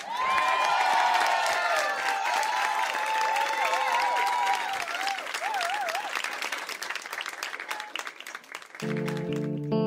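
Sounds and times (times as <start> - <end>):
cheering: 0.0 - 9.5
audience applause for a performer: 0.0 - 9.7.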